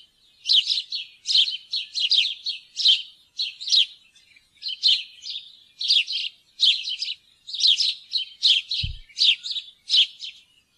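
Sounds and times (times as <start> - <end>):
house sparrow chirping: 0.0 - 10.7
low thump: 8.8 - 9.1.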